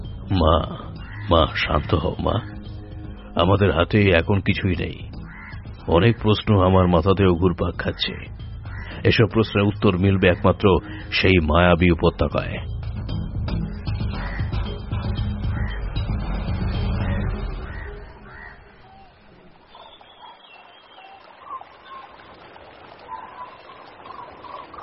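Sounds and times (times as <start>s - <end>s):
flock of cranes and herons cawing and calling at a river: 0.0s - 3.6s, 5.1s - 7.2s, 7.8s - 11.1s, 13.6s - 22.2s, 23.1s - 24.8s
speech: 0.3s - 2.6s, 3.4s - 5.1s, 5.8s - 8.4s, 9.0s - 12.7s
rushing river water: 15.6s - 24.8s.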